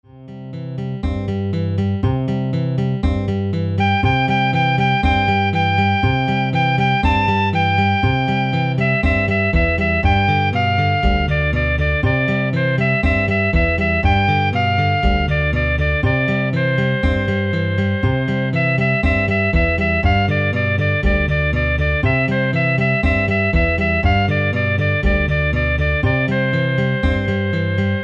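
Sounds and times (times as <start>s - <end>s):
guitar: 0.3s - 28.0s.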